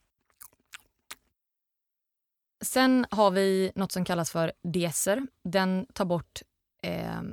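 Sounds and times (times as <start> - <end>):
wet chewing and lip smacking on a banana: 0.3 - 1.2
speech: 2.6 - 7.3.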